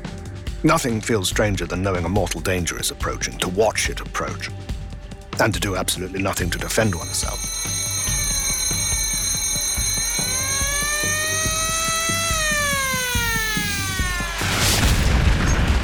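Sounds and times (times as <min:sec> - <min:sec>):
speech: 0:00.6 - 0:04.8, 0:05.4 - 0:07.5
wailing tonal sweeps of a torpedo approaching a warship: 0:07.1 - 0:14.8
heavy rumbling boom of a torpedo striking a warship: 0:14.4 - 0:15.8.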